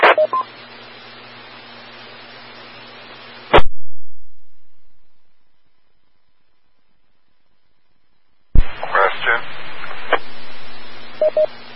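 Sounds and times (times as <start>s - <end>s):
hissy band-limited radio static from stuck-open microphone: 0.0s - 0.3s, 8.6s - 11.4s
brief radio beeps: 11.2s - 11.5s.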